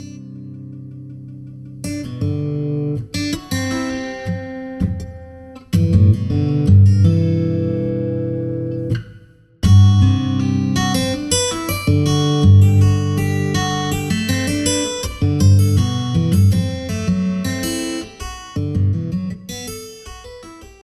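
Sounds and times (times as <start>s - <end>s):
sad and happy guitar notes: 0.0s - 20.8s.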